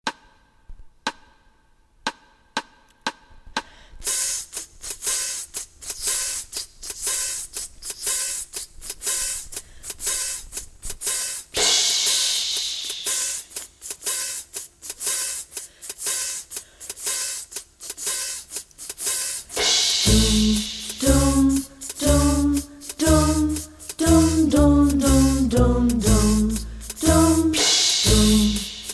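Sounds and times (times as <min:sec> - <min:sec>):
jazz instruments playing: 0:20.0 - 0:28.9.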